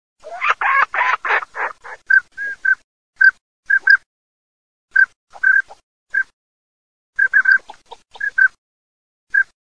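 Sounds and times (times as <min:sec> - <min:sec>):
maicero bird sound: 0:00.2 - 0:04.0, 0:04.9 - 0:06.3, 0:07.2 - 0:08.6, 0:09.3 - 0:09.6.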